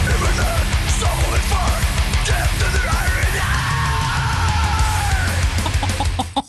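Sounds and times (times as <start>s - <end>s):
pounding death metal drums: 0.0s - 6.0s
heavy distorted death metal guitars: 0.0s - 6.4s
harsh growled and screamed death metal vocals: 2.4s - 5.6s
laughter: 5.3s - 6.4s.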